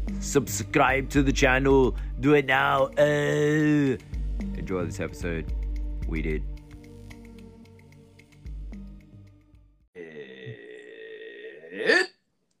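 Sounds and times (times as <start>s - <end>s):
speech: 0.2s - 6.5s
long burp: 10.0s - 12.2s.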